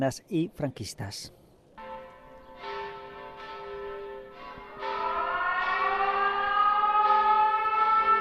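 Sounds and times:
speech: 0.0 - 1.4
air raid siren wailing: 2.8 - 8.1.

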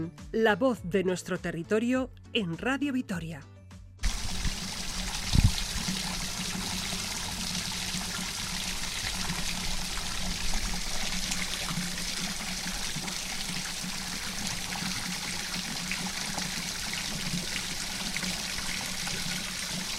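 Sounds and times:
speech: 0.0 - 3.5
water flowing into a stone washing basin in a village public washhouse: 4.0 - 19.9.

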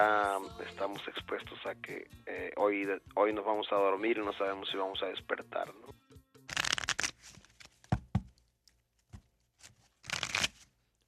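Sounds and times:
speech: 0.0 - 6.0
playing cards being shuffled with rapid riffling: 6.5 - 8.4, 9.0 - 11.0
sharp taps and knocks of playing cards: 6.5 - 9.3.

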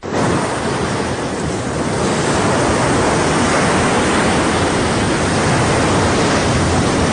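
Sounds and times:
ocean surf with waves crashing and washing: 0.0 - 7.1.

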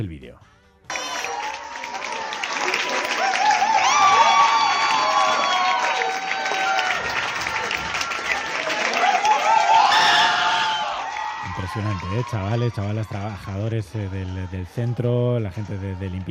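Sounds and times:
speech: 0.0 - 1.0, 11.8 - 16.3
large crowd of young people clapping: 0.9 - 13.2
young people shouting and whooping: 0.9 - 13.3
large crowd of young people cheering: 0.9 - 16.3.

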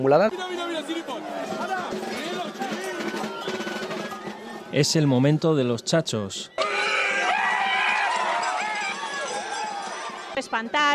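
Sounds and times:
speech: 0.0 - 2.0, 4.7 - 6.6, 10.4 - 10.9
busy crowd with rushing movement: 0.0 - 10.9
wild animal-like shrieks and howls from several voices while running: 6.6 - 9.3.

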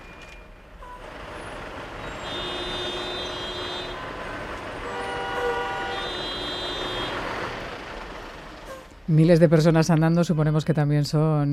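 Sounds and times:
vehicle engines idling and moving: 0.0 - 10.0
heavy traffic rumble at a border crossing: 0.0 - 11.5
vehicle horns tooting in overlapping tones: 1.9 - 7.8
speech: 9.1 - 11.5.

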